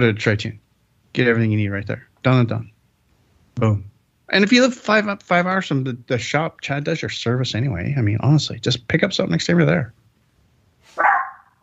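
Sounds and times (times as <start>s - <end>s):
speech: 0.0s - 2.7s, 3.6s - 10.0s
dog barking: 10.9s - 11.6s.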